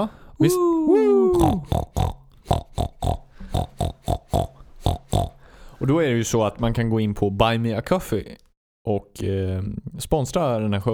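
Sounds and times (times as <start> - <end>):
speech: 0.0 - 2.2, 5.8 - 10.9
pig squealing: 1.0 - 5.4.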